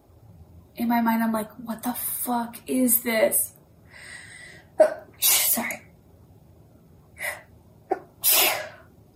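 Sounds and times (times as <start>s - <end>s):
speech: 0.8s - 4.2s, 4.8s - 5.8s
sneeze caused by allergies: 4.8s - 5.7s, 7.9s - 8.8s.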